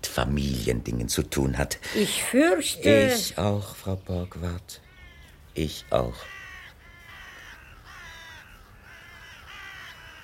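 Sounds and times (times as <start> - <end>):
speech: 0.1 - 4.8, 5.6 - 6.4
ravens cawing: 4.7 - 10.2.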